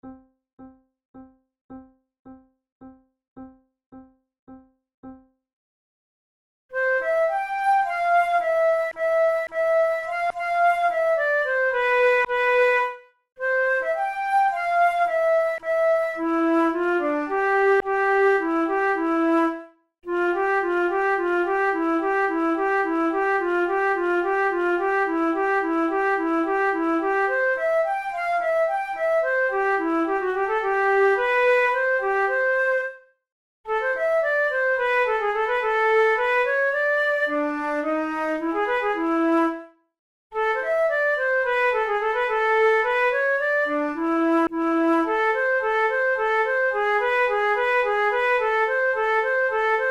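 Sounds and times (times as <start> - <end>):
solo flute fantasia: 6.7 - 33.1, 33.7 - 39.8, 40.4 - 49.8.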